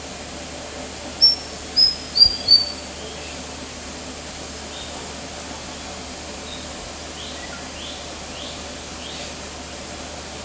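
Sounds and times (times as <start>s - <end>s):
faint steady hiss: 0.0s - 10.4s
White-throated fantail giving high thin whistles at Kinabalu Park headquarters, Borneo: 1.2s - 2.8s.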